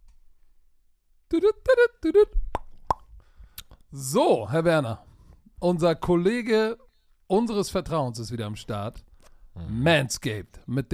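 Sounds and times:
speech: 0:01.3 - 0:02.4, 0:03.9 - 0:10.9
voiced sing-song syllables: 0:01.3 - 0:02.4.

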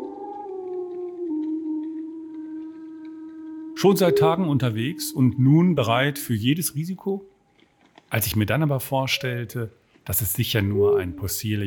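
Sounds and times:
wolf howling: 0:00.0 - 0:06.6, 0:10.6 - 0:11.6
speech: 0:03.8 - 0:07.3, 0:08.1 - 0:11.6.

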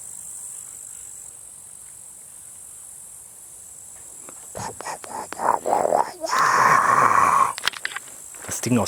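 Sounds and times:
low croaking grunts: 0:04.4 - 0:07.7
speech: 0:08.6 - 0:08.8.

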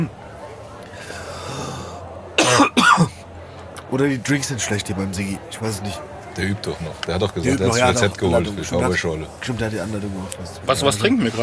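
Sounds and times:
speech: 0:00.0 - 0:00.2, 0:03.9 - 0:11.4
soft murmur: 0:00.0 - 0:11.4
person coughing: 0:02.4 - 0:03.1.

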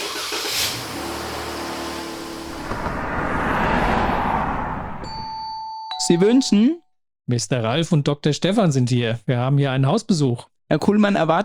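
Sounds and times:
car engine rumbling as the vehicle rolls closer: 0:00.0 - 0:05.3
road noise: 0:00.0 - 0:05.4
speech: 0:06.1 - 0:11.4.

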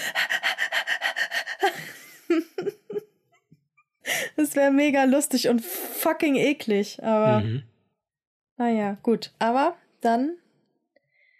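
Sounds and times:
person imitating a dog panting: 0:00.0 - 0:01.6
speech: 0:04.6 - 0:07.7, 0:08.6 - 0:10.4.

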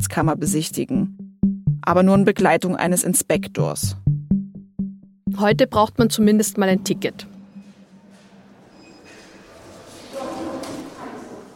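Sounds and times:
speech: 0:00.0 - 0:01.2, 0:01.8 - 0:04.0, 0:05.3 - 0:07.3
footsteps in a large museum entrance hall: 0:07.1 - 0:11.5.

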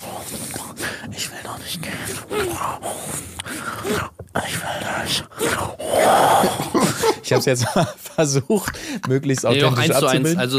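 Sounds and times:
speech: 0:01.2 - 0:04.5, 0:07.3 - 0:10.5
person imitating moaning from car scene audio: 0:01.8 - 0:04.2, 0:05.0 - 0:07.4
laughter: 0:06.4 - 0:10.0.

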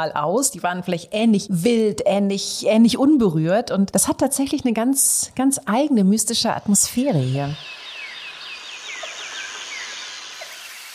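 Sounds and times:
speech: 0:00.0 - 0:07.8
animal chirps in cloud forest: 0:07.0 - 0:10.9
descending animal whistles in cloud forest: 0:07.2 - 0:10.9.

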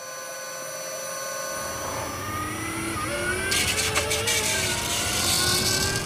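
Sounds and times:
electric van drive motor with 83 kW peak power whining while accelerating: 0:00.0 - 0:06.0
low rumble of road noise: 0:01.5 - 0:06.0.

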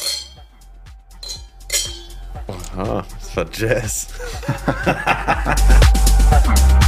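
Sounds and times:
wine glasses clinking in a toast: 0:00.0 - 0:00.5, 0:01.2 - 0:02.4
speech: 0:02.8 - 0:06.7
laughter: 0:04.1 - 0:06.0.

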